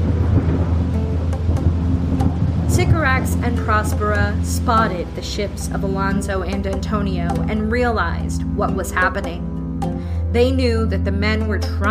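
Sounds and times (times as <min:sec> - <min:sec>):
crashing waves around a small island: 0:00.0 - 0:07.2
rain in a thunderstorm around a small island: 0:00.0 - 0:09.1
deep rumble of a thunderstorm: 0:00.0 - 0:11.8
wind in a thunderstorm around a small island: 0:00.0 - 0:11.8
speech: 0:03.2 - 0:09.5, 0:10.3 - 0:11.8.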